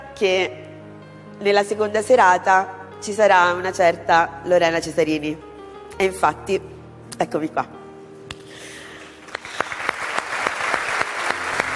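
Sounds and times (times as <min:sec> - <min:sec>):
speech: 0:00.2 - 0:00.6, 0:01.4 - 0:07.8
festival audience applause: 0:09.0 - 0:11.7.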